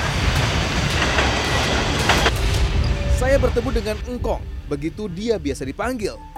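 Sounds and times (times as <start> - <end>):
train wheels clacking over rail joints: 0.0 - 2.6
train rumbling past at a railway level crossing: 0.0 - 6.0
speech: 3.3 - 6.3.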